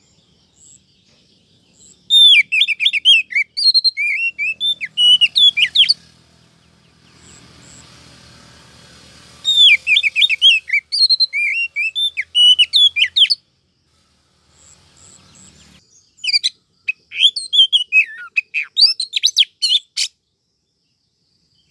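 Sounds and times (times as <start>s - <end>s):
female Oriental magpie-robin calling the male: 1.8s - 6.1s, 9.4s - 13.4s, 15.0s - 20.2s.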